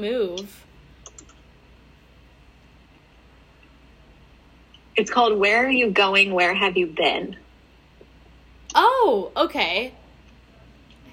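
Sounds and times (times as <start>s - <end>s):
speech: 0.0s - 0.7s, 5.0s - 7.4s, 8.8s - 10.0s
low rumbling noise: 0.0s - 11.1s
computer keyboard typing clicks: 0.4s - 1.4s.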